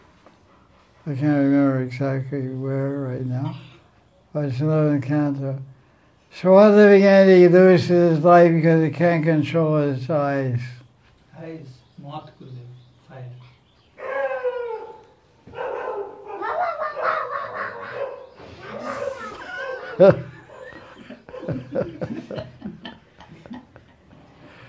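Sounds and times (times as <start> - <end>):
speech: 1.0 - 3.7, 4.4 - 5.7, 6.3 - 10.8, 11.4 - 13.4, 20.0 - 20.3, 21.5 - 22.5
dogs barking and yowling at deep and high pitches: 14.0 - 22.2
laughter: 16.4 - 24.6.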